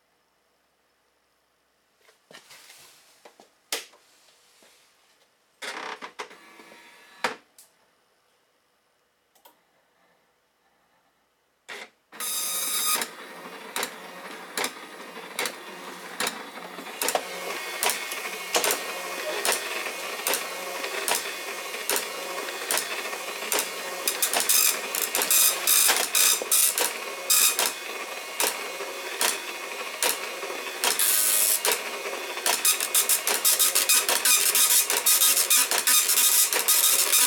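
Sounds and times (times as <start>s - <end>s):
dot matrix printer printing: 11.7s - 37.2s.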